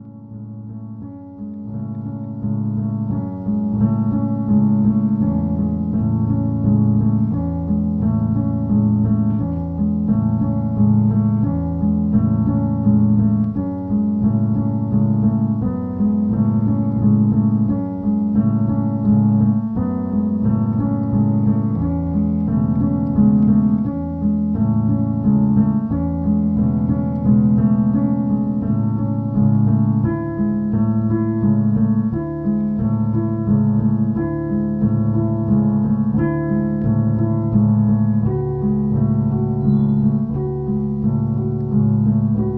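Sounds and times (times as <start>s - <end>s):
piano: 0.0s - 42.5s.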